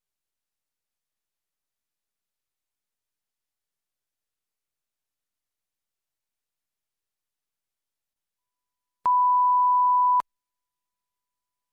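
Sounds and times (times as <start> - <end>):
answering machine beep: 9.1 - 10.2.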